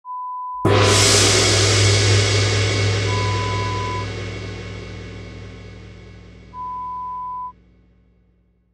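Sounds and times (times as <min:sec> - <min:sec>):
gong: 0:00.6 - 0:08.1.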